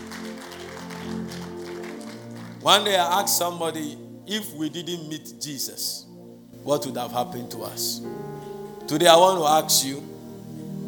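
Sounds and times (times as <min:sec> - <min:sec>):
audience clapping: 0:00.0 - 0:03.5
speech: 0:02.6 - 0:08.3, 0:08.9 - 0:10.1.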